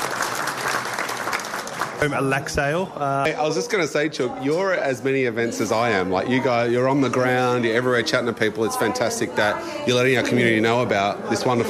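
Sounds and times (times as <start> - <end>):
round of applause from a group of people: 0.0 - 2.4
speech: 2.0 - 11.6.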